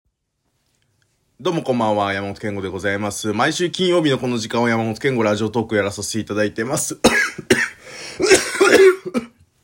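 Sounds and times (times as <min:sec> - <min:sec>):
speech: 0:01.4 - 0:09.3
harsh rasping coughing fit: 0:07.0 - 0:09.4
throat clearing: 0:07.1 - 0:09.4.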